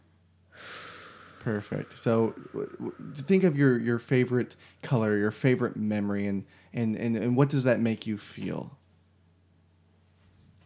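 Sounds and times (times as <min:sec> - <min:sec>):
deep breath in: 0:00.5 - 0:03.8
speech: 0:01.4 - 0:08.8.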